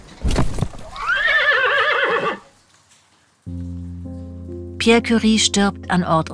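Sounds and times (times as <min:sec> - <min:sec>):
horse pulling a carriage whinnying: 0:00.9 - 0:02.5
steady low droning tone: 0:03.5 - 0:06.3
speech: 0:04.8 - 0:06.3.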